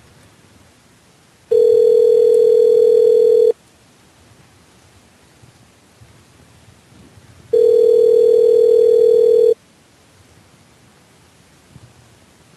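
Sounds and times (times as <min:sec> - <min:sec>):
faint telephone line hiss: 0:00.0 - 0:12.5
telephone ringing tone while calling someone back: 0:01.5 - 0:03.6, 0:07.5 - 0:09.6.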